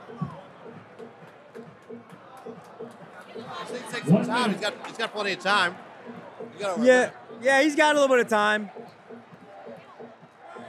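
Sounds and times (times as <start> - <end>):
large stadium crowd erupting in cheers: 0.0 - 10.6
rhythmic bursts of clapping or stomping: 0.1 - 5.2, 8.8 - 10.6
speech: 3.7 - 5.8, 6.6 - 8.8.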